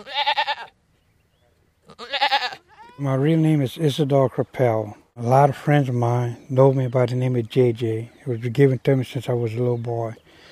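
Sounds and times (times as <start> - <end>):
goat bleating: 0.0 - 0.8, 1.8 - 3.0
speech: 3.0 - 10.2.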